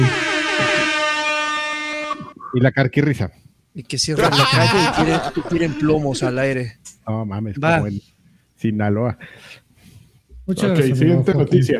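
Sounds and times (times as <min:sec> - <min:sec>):
DJ air horn sound effect blast: 0:00.0 - 0:02.4
speech: 0:02.5 - 0:09.6, 0:10.5 - 0:11.7
laughter: 0:04.1 - 0:06.6.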